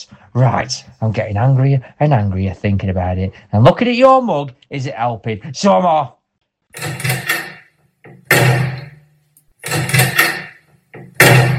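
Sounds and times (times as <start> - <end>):
speech: 0.0 - 7.0
door creaking open: 6.8 - 9.0, 9.6 - 11.5.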